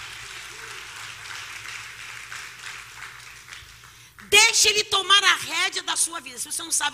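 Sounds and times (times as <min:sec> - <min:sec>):
audience at a church service applauding: 0:00.0 - 0:04.5
speech: 0:04.3 - 0:06.9.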